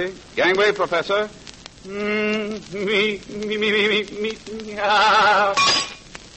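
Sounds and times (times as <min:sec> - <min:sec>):
speech: 0:00.0 - 0:06.0
brick smashing through window glass: 0:05.6 - 0:06.1
window glass shards tinkling: 0:05.6 - 0:06.1.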